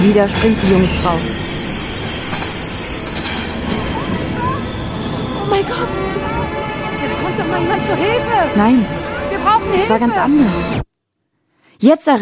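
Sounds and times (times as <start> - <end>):
train wheels squealing pulling into station: 0.0 - 10.7
speech: 0.1 - 1.5, 5.5 - 6.2, 7.2 - 10.8, 11.8 - 12.2.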